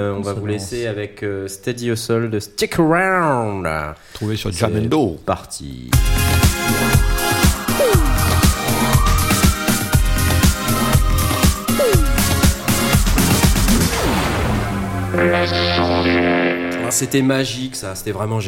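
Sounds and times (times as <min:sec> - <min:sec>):
speech: 0:00.0 - 0:07.1, 0:16.9 - 0:18.4
upbeat rock-pop music track with driving drum beat and bright guitars: 0:06.0 - 0:14.0, 0:15.1 - 0:17.5.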